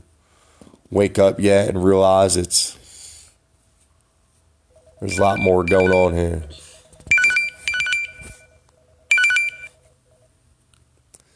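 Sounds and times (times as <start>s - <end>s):
speech: 0.9s - 2.8s, 5.0s - 6.7s
mobile phone ringtone electronic chime pattern: 4.7s - 9.9s.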